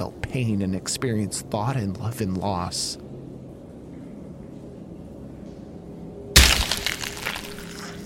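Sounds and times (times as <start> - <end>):
speech: 0.0 - 3.0
low hum: 0.0 - 8.0
brief crackling scatter: 6.4 - 8.0
heavy rock smashing down on a skull: 6.4 - 8.0.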